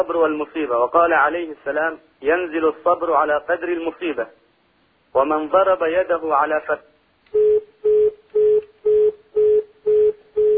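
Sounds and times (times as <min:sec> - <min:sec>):
speech: 0:00.0 - 0:04.4, 0:05.1 - 0:07.4
phone line disconnect tone beeps: 0:07.4 - 0:10.5.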